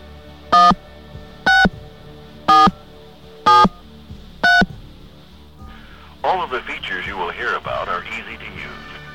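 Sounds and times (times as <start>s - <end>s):
touch-tone phone keypad beeps: 0.6s - 0.8s, 1.5s - 1.7s, 2.5s - 2.8s, 3.5s - 3.8s, 4.4s - 4.7s
person talking: 6.2s - 9.0s.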